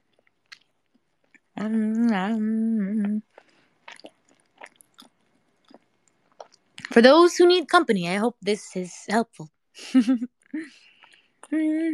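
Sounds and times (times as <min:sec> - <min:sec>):
person chewing food while eating: 0:00.0 - 0:01.6, 0:03.0 - 0:07.0, 0:10.8 - 0:11.6
sustained hummed vocal sound: 0:01.6 - 0:03.3, 0:11.4 - 0:11.9
speech: 0:01.6 - 0:03.4, 0:07.0 - 0:10.9, 0:11.5 - 0:11.9.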